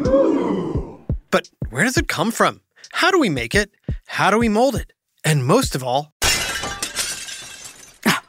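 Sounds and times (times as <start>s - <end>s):
speech: 1.4s - 6.1s
glass pane shattering after someone leans on it: 6.2s - 8.2s
glass pieces clattering on the ground: 6.2s - 8.2s
scattered glass shards tinkling: 6.2s - 8.2s.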